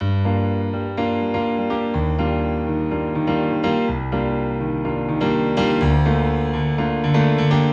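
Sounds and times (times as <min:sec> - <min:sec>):
UK garage house piano loop in G minor: 0:00.0 - 0:07.7.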